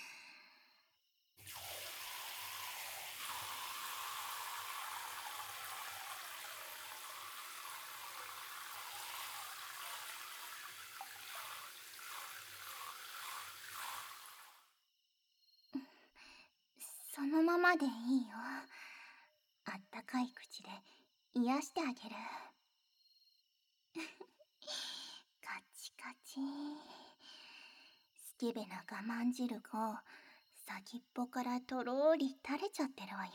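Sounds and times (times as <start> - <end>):
running water rinsing off soap foam: 1.4 - 14.7
speech: 17.3 - 18.8, 20.1 - 22.5, 26.4 - 26.6, 28.4 - 33.3.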